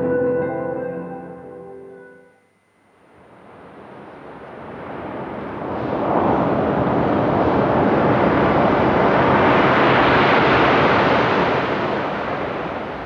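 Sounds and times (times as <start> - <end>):
brief sustained musical tone: 0.0 - 2.7
waves washing onto a sandy beach: 3.8 - 13.0.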